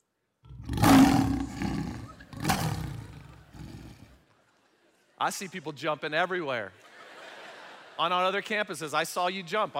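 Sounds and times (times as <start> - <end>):
lion roaring: 0.5 - 4.2
speech: 5.2 - 6.8, 8.0 - 9.7
laughter: 6.8 - 8.5.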